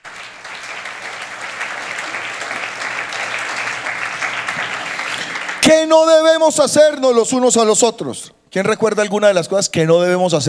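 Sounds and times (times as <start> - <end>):
audience applauding: 0.0 - 5.9
speech: 5.7 - 10.4.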